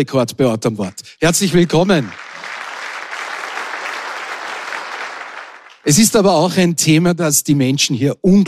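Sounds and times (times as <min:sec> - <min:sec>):
speech: 0:00.0 - 0:02.2, 0:05.8 - 0:08.4
large audience applauding: 0:01.2 - 0:06.1.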